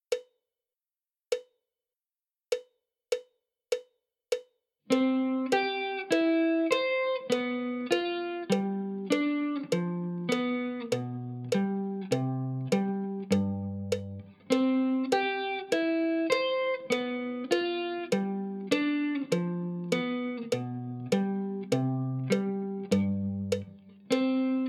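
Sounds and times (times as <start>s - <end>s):
guitar position changing exercise: 4.9s - 24.6s.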